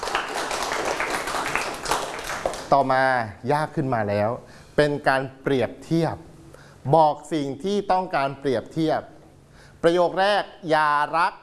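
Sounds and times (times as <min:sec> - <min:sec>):
hands clapping: 0:00.0 - 0:03.0
speech: 0:02.7 - 0:09.1, 0:09.8 - 0:11.4.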